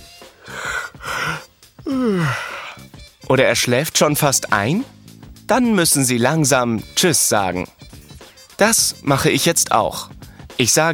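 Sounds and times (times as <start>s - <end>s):
person yawning: 0.4s - 2.9s
speech: 1.9s - 2.5s, 3.3s - 7.8s, 8.6s - 10.9s.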